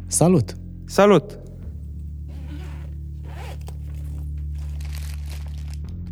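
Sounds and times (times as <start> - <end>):
speech: 0.1 - 1.4
zipper pulled open on a food delivery bag: 2.3 - 5.8
food delivery bag crinkling and rustling as handled: 3.3 - 5.9.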